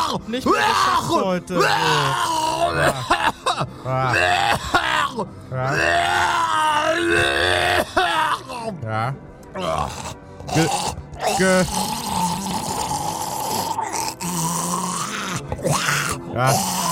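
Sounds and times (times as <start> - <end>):
person groaning with drawn-out vocal moans: 0.0 - 8.7, 9.6 - 16.8
speech: 0.1 - 12.1, 15.6 - 16.8.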